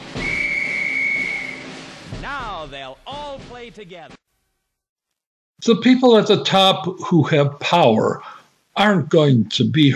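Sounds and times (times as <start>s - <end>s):
drum major blowing a whistle: 0.1s - 1.8s
speech: 2.3s - 4.2s, 5.6s - 9.9s.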